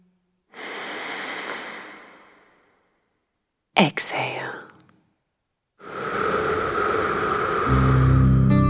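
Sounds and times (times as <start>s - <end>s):
slow deep inhale: 0.5s - 3.0s, 5.8s - 8.6s
speech: 3.8s - 4.7s.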